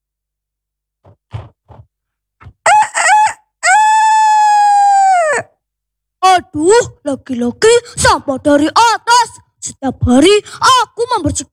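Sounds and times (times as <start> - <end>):
rooster clucking: 2.4 - 3.4
rooster crowing: 2.6 - 5.5
speech: 6.6 - 9.0, 9.8 - 11.5.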